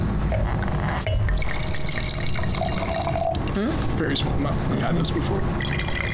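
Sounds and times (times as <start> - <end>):
wine pouring into a glass: 1.1 - 3.6, 5.6 - 6.1
speech: 3.6 - 5.9.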